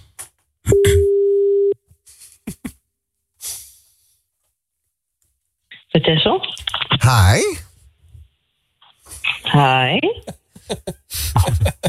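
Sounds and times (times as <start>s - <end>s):
telephone tone during a call: 0.7s - 1.8s
laughter: 2.2s - 2.8s, 10.2s - 11.8s
speech: 6.1s - 7.6s, 9.6s - 11.8s.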